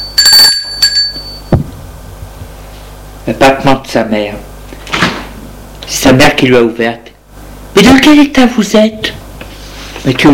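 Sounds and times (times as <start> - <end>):
doorbell ringing at an apartment: 0.0 - 1.6
speech: 3.3 - 4.5, 6.1 - 7.1, 7.8 - 9.2, 10.0 - 10.3.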